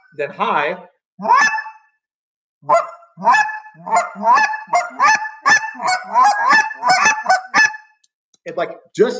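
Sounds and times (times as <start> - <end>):
speech: 0.1 - 1.7, 2.6 - 7.4, 8.4 - 9.1
double clucks blown on a turkey call: 1.2 - 2.0, 2.6 - 8.0.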